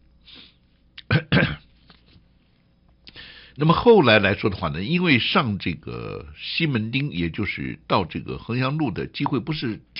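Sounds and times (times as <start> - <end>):
person sneezing: 1.0 - 1.7
speech: 3.6 - 9.9.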